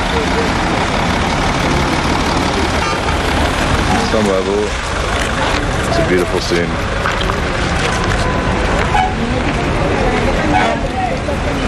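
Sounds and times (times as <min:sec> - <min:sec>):
moving bus engine rumble: 0:00.0 - 0:11.6
faint murmuring voices: 0:03.9 - 0:11.6
speech: 0:04.1 - 0:04.9, 0:06.0 - 0:07.0.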